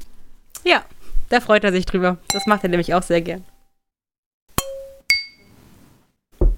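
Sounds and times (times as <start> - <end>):
speech: 0.7 - 3.5
drinking glasses clinking in a toast: 2.3 - 3.0, 4.6 - 5.6.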